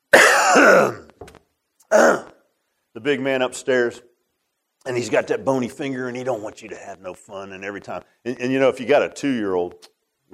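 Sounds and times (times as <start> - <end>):
man clearing his throat: 0.1 - 1.1, 1.9 - 2.4
man coughing: 0.1 - 1.1
speech: 0.6 - 1.0, 3.0 - 4.1, 4.8 - 10.3.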